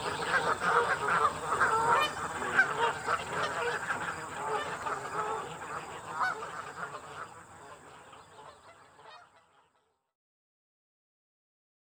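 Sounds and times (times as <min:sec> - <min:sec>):
goose flock honking and gabbling while being fed: 0:00.0 - 0:08.6.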